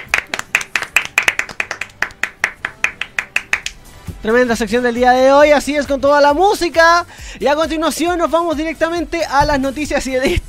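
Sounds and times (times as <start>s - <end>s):
small group clapping hands: 0.0s - 3.8s
speech: 4.2s - 10.4s.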